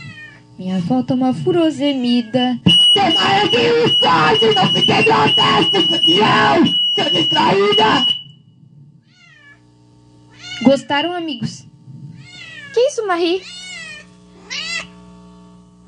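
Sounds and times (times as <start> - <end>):
cat meowing: 0.0 - 0.4, 9.0 - 9.6, 10.3 - 11.0, 12.1 - 12.8, 13.4 - 15.0
speech: 0.6 - 8.2, 10.6 - 11.7, 12.8 - 13.6.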